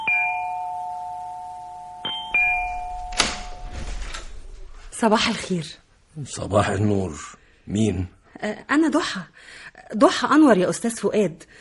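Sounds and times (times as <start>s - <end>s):
doorbell chime: 0.0s - 4.2s
rustling: 2.7s - 5.8s
speech: 5.0s - 11.5s.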